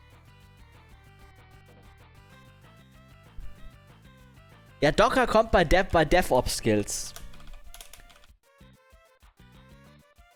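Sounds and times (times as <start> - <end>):
clicky computer keyboard keystrokes: 3.4 - 3.7, 4.8 - 8.3
speech: 4.8 - 7.2.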